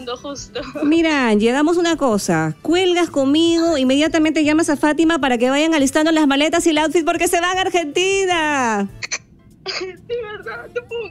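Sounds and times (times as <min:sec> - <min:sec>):
speech: 0:00.0 - 0:11.0
woman sobbing with joy and emotion: 0:09.6 - 0:11.0.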